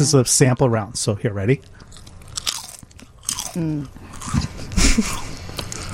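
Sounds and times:
speech: 0.0 - 2.0, 3.6 - 5.2
barbecue potato chip being chewed with crunching: 1.8 - 4.5.

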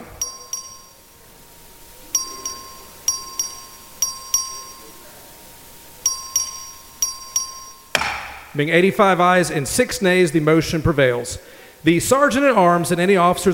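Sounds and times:
legislative chamber vote bell chiming in two-note pairs: 0.0 - 8.0
faint steady hum: 0.0 - 13.5
speech: 8.6 - 13.5.

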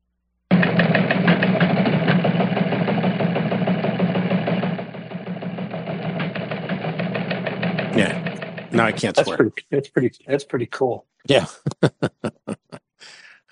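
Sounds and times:
teletype machine running in a studio: 0.5 - 9.1
laughter: 8.8 - 10.1, 11.3 - 13.5
speech: 8.8 - 12.3.

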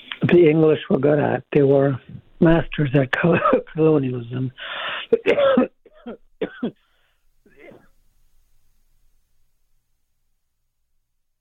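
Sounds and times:
speech: 0.3 - 6.8
person with a growing tumor coughing: 3.3 - 3.7, 5.0 - 6.8.

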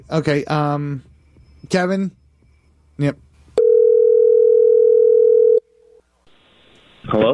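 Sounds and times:
speech: 0.0 - 1.1, 1.7 - 2.2, 3.0 - 3.3, 7.1 - 7.3
telephone dial tone after call hang-up: 3.6 - 5.6.

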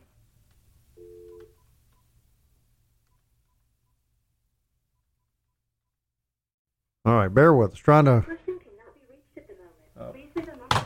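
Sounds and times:
faint short beeps and clicks of phone dialing: 1.0 - 2.1
loud dual-pitch telephone keypad tone: 1.0 - 2.1
speech: 7.1 - 8.4.

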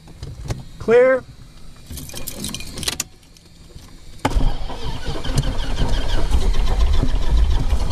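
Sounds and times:
speech: 0.8 - 1.3
light jangling: 1.8 - 3.5
propeller airplane engine starting: 2.0 - 7.9.

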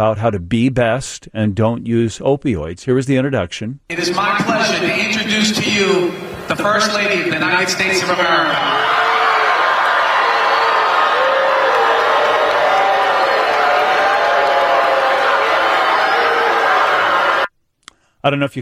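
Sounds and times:
speech: 0.0 - 9.0, 18.2 - 18.5
large indoor crowd of high schoolers booing: 3.9 - 17.5.

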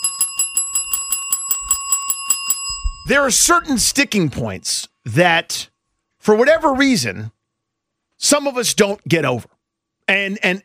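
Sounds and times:
bell rung in quick evenly spaced metallic strikes: 0.0 - 4.0
speech: 3.1 - 7.4, 8.2 - 9.5, 10.1 - 10.6.

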